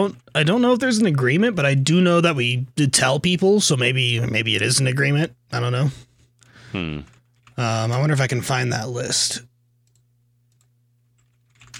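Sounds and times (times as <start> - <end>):
speech: 0.0 - 6.1, 6.7 - 9.5
steady low hum: 0.0 - 11.7
quiet computer keyboard typing: 9.8 - 11.7.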